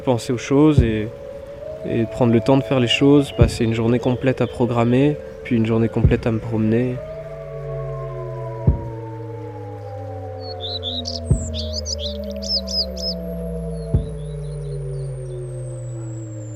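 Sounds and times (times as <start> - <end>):
speech: 0.0 - 1.2, 1.8 - 7.1
birds chirping and singing outdoors: 0.0 - 16.5
steady low hum with gliding tones: 0.0 - 16.5
soft thumps: 6.0 - 6.4, 8.6 - 9.4, 13.9 - 14.4.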